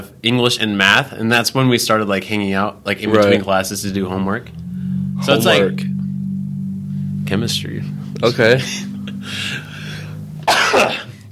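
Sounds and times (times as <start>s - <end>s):
low hum: 0.0s - 11.3s
speech: 0.2s - 4.6s, 5.2s - 5.9s, 7.3s - 9.7s
person coughing: 10.4s - 11.3s.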